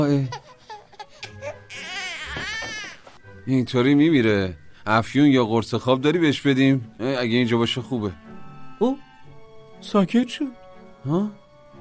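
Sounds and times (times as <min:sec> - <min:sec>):
speech: 0:00.0 - 0:00.5, 0:03.4 - 0:09.1, 0:09.8 - 0:11.4
child crying: 0:00.2 - 0:03.0.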